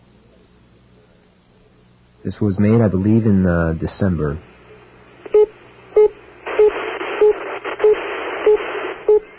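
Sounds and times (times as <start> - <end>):
phone line static hiss: 0.0 - 9.3
speech: 2.2 - 4.5
telephone busy signal beeps: 5.3 - 9.3.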